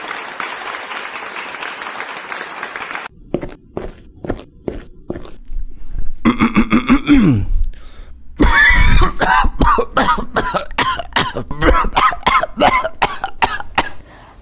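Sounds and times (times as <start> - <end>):
person coughing harshly: 6.2 - 7.6, 8.4 - 14.0
throat clearing: 6.2 - 7.6, 8.4 - 14.0.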